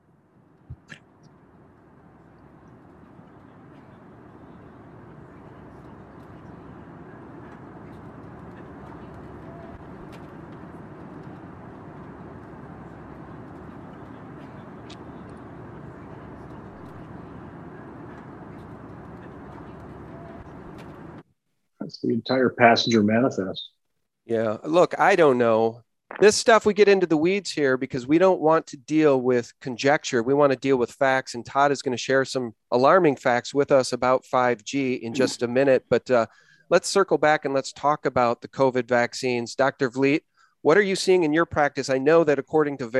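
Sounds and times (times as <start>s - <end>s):
engine drone inside an airplane cabin in flight: 0.6s - 21.2s, 35.1s - 35.4s
speech: 22.0s - 42.9s.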